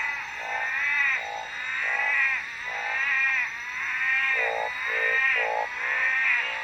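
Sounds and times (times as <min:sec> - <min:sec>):
tree frogs calling in a chorus at night: 0:00.0 - 0:06.6.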